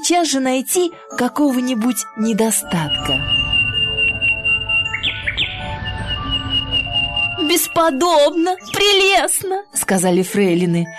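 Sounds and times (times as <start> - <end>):
speech: 0.1 - 3.4, 7.5 - 10.9
steady high-pitched tone: 2.6 - 9.2
nightingale singing whistled chirps: 2.6 - 9.3.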